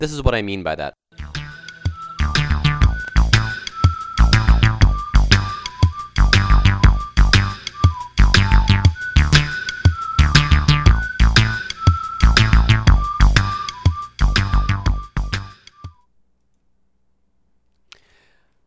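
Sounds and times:
speech: 0.0s - 1.0s
steady pulsing beat of a music demo: 1.2s - 16.0s
bright whistle-like sequenced keyboard melody: 1.2s - 16.1s.

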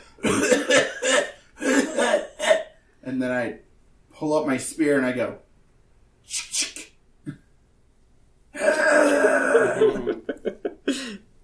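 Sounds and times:
person coughing violently: 0.0s - 2.8s, 8.6s - 10.2s
speech: 4.2s - 5.4s, 6.3s - 7.4s
laughter: 9.4s - 11.2s.

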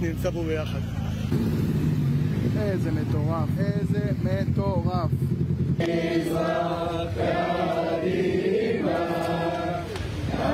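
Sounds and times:
speech: 0.0s - 1.8s, 2.4s - 9.2s
motorcycle convoy engines riding past: 0.0s - 10.5s.

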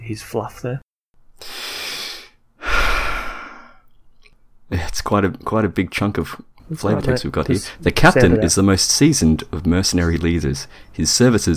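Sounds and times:
speech: 0.1s - 1.6s, 4.8s - 11.5s
person breathing deeply before reading aloud: 1.4s - 3.9s.

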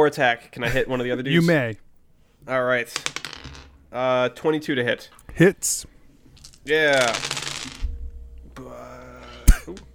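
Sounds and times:
speech: 0.0s - 1.8s, 2.4s - 5.9s, 6.6s - 7.4s
low hum: 0.5s - 9.9s
many dice tumbling across a hard tabletop: 2.9s - 3.8s, 6.4s - 7.9s.

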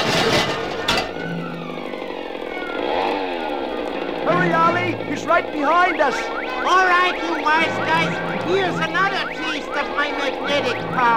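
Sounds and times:
motor scooter engine running and revving: 0.8s - 6.6s
speech: 4.4s - 11.1s.

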